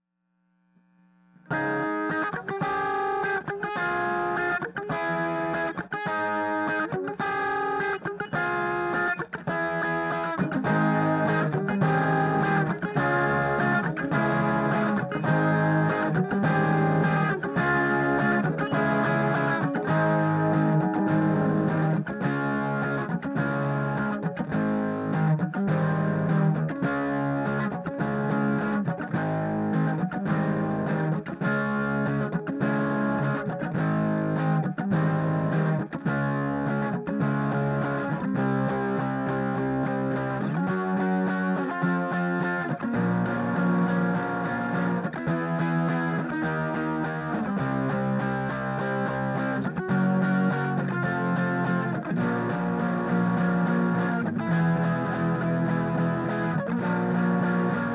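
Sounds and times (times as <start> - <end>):
guitar bus with no effects: 1.0 - 57.9.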